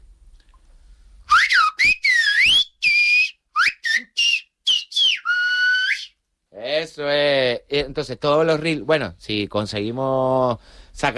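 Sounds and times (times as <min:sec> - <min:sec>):
person whistling a Canarian song: 0:01.3 - 0:06.2
speech: 0:07.0 - 0:11.1.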